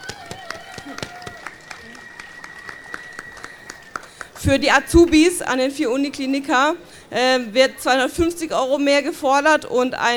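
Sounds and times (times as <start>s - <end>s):
single person clapping hands: 0.0s - 4.5s
speech: 4.4s - 10.1s.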